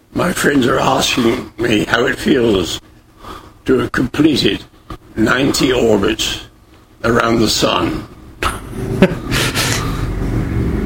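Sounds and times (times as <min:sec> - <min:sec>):
speech: 0:00.2 - 0:02.8, 0:03.7 - 0:09.5
street traffic rumble: 0:08.4 - 0:10.8
car passing by: 0:09.7 - 0:10.8.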